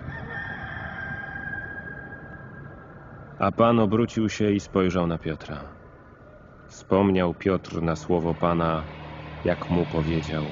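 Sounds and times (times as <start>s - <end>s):
rooster crowing: 0.0s - 2.9s
speech: 3.4s - 5.8s, 6.9s - 10.5s.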